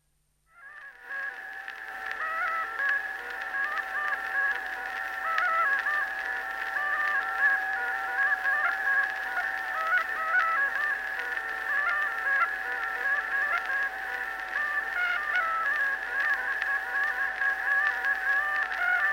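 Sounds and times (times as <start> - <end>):
English bagpipe folk music: 0.7 - 19.1.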